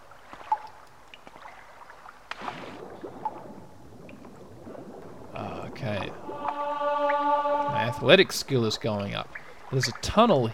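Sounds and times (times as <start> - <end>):
water dripping in a cave lake: 0.0 - 10.5
speech: 8.0 - 10.5.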